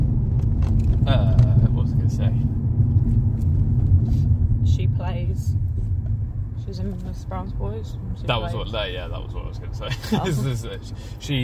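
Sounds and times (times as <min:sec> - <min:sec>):
road traffic passing outside: 0:00.0 - 0:11.4
speech: 0:06.7 - 0:11.4
laughter: 0:09.8 - 0:10.7.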